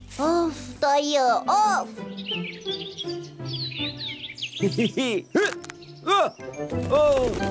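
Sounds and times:
speech: 0.2s - 7.5s
bird calling with chirps, warbles and swooping whistles: 1.0s - 6.7s.

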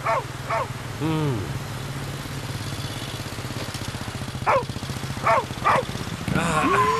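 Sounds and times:
dog barking: 0.0s - 0.7s, 4.5s - 5.9s
steady low engine-like drone: 0.0s - 6.9s.

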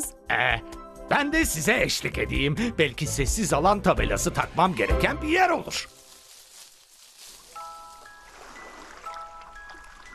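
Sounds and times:
speech: 0.3s - 6.0s
ocean waves: 7.5s - 10.1s.

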